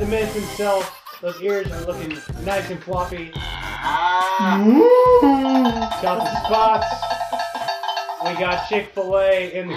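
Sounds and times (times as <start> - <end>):
speech: 0.1 - 7.2, 8.2 - 9.7
cow moo from a pressed sound-effect button: 3.3 - 5.9.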